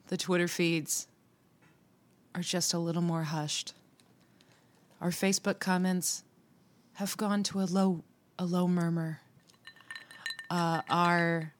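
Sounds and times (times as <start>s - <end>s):
speech: 0.1s - 1.1s, 2.4s - 3.8s, 5.0s - 6.3s, 7.0s - 9.2s, 10.5s - 11.5s
ice cubes clinking in a glass: 9.5s - 11.2s.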